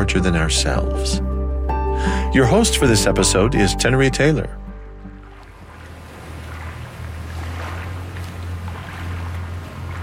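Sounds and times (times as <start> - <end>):
speech: 0.0 - 1.2, 2.0 - 4.6
low constant rumbling drone: 0.2 - 10.0
River Thames water lapping against the bank in London: 3.9 - 10.0.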